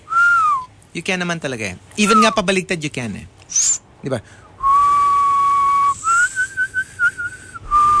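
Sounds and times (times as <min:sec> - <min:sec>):
person whistling a clear tone with the tongue in a U-shape: 0:00.1 - 0:00.7, 0:04.6 - 0:07.9
speech: 0:01.0 - 0:04.4.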